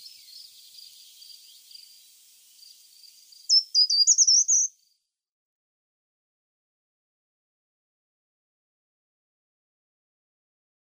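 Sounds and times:
short-toed treecreeper song of high sharp jumping notes: 0:00.0 - 0:05.2.

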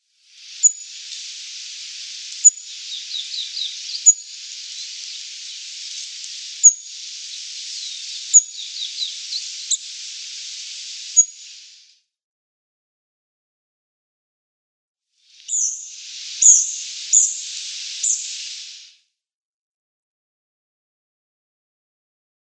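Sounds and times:
Olive-backed Pipit calls: 0:00.4 - 0:11.8, 0:15.4 - 0:18.9.

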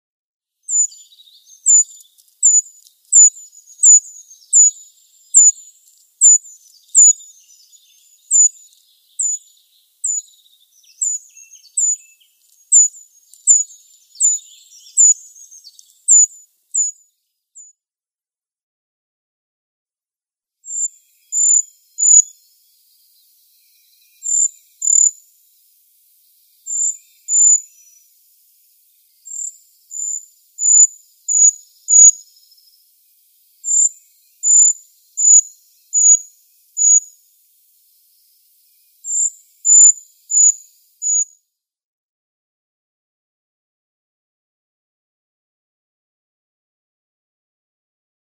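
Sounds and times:
Eurasian treecreeper calls: 0:00.6 - 0:17.0, 0:20.7 - 0:37.2, 0:37.9 - 0:41.4.

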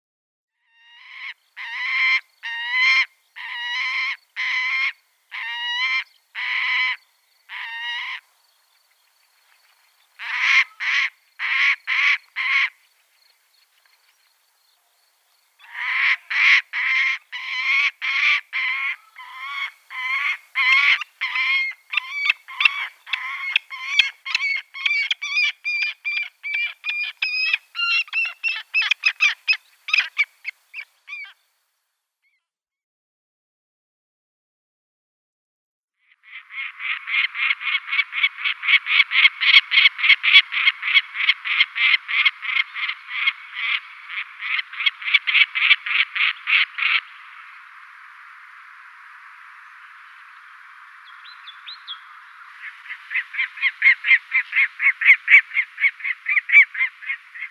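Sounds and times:
Lanner falcon calling: 0:00.7 - 0:08.2, 0:10.2 - 0:12.8, 0:15.6 - 0:31.4, 0:36.3 - 0:47.4, 0:51.2 - 0:57.4.

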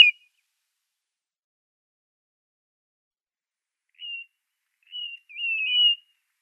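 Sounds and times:
blue-naped mousebird high thin whistling calls: 0:00.0 - 0:00.2, 0:04.9 - 0:06.0.

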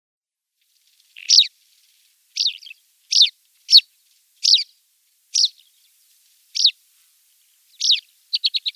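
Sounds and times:
tawny pipit flight calls: 0:01.1 - 0:01.5, 0:02.4 - 0:05.8, 0:06.5 - 0:06.8, 0:07.7 - 0:08.7.

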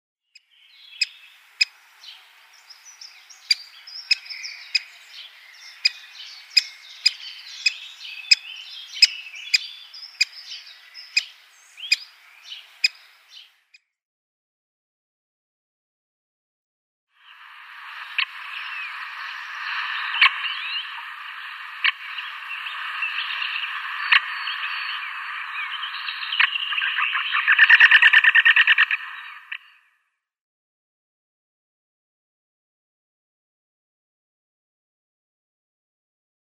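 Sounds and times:
lesser spotted woodpecker calls: 0:00.8 - 0:13.5, 0:18.1 - 0:29.7.

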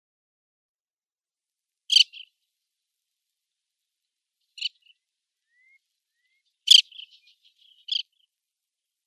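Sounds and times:
Lesser Sandplover call: 0:01.9 - 0:02.3, 0:04.5 - 0:08.3.

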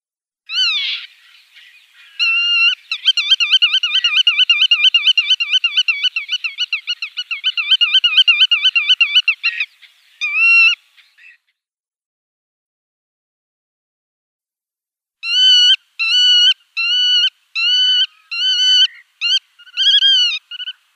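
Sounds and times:
Black-tailed godwit display calls: 0:00.5 - 0:11.5, 0:15.2 - 0:20.9.

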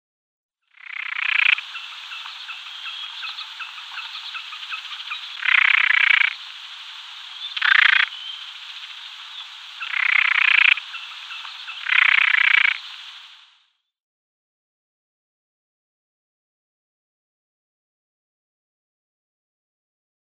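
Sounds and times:
Jack Snipe calls: 0:00.7 - 0:13.1.

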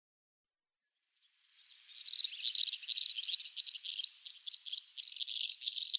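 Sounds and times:
pair of Three-banded Plovers display calling: 0:01.4 - 0:05.9.

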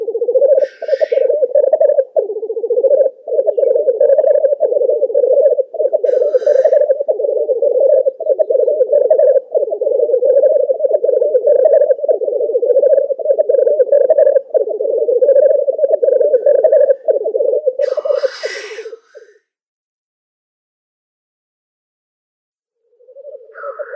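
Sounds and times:
male black grouse display bubbling: 0:00.0 - 0:19.4
black grouse sharp hissing burst: 0:17.8 - 0:19.3.

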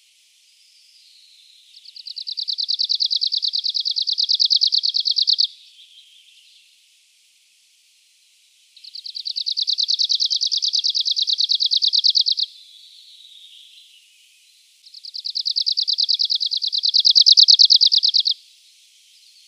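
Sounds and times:
Arctic warbler singing dry even trills: 0:02.0 - 0:05.5, 0:08.9 - 0:12.5, 0:15.0 - 0:18.4.

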